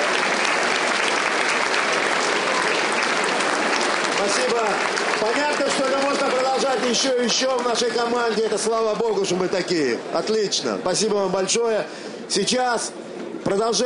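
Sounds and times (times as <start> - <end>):
audience applause at a seminar: 0.0 - 9.4
speech: 4.5 - 13.8.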